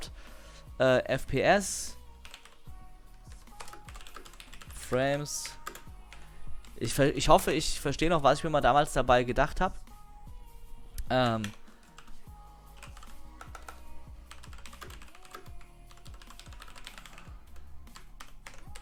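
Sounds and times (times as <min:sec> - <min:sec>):
speech: 0:00.8 - 0:02.0, 0:04.9 - 0:05.6, 0:06.8 - 0:09.8, 0:11.1 - 0:11.6
typing on a computer keyboard: 0:02.3 - 0:02.6, 0:03.3 - 0:04.7, 0:11.2 - 0:12.1, 0:12.8 - 0:18.8.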